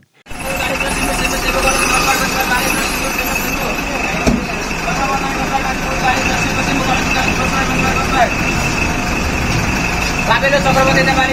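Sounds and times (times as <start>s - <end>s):
raised voices: 0.3s - 11.3s
bus engine rumble and hiss pulling into a stop: 3.9s - 11.3s
speech: 10.4s - 11.3s.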